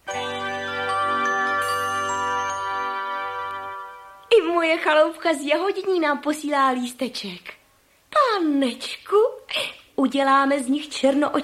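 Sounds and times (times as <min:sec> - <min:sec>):
small bell tinkling: 0:00.1 - 0:04.6
speech: 0:04.6 - 0:07.6, 0:08.4 - 0:11.4.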